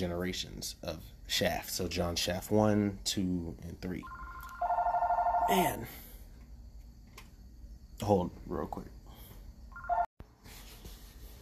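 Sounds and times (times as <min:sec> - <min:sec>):
speech: 0:00.0 - 0:04.2, 0:05.5 - 0:06.0, 0:08.0 - 0:09.0
steady low hiss: 0:00.0 - 0:09.8
electronic phone tone beeping as a telephone is answered: 0:04.0 - 0:05.6, 0:09.7 - 0:10.1.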